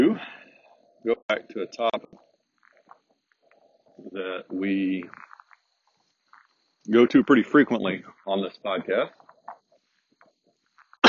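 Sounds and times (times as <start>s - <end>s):
faint soft noises: 0.0s - 11.0s
speech: 1.0s - 2.2s, 4.0s - 5.3s, 6.9s - 9.2s.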